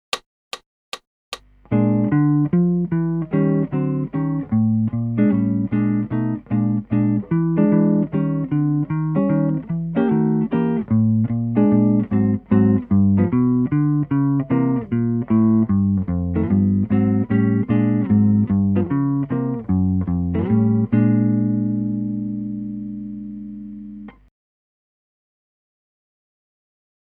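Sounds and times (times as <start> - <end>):
jazz blues guitar: 1.7 - 24.2.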